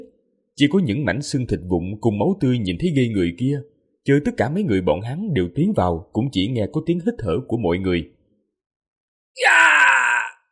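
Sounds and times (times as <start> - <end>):
speech: 0.6 - 8.2, 9.4 - 9.6
agonized mournful scream from a single human voice: 9.4 - 10.5.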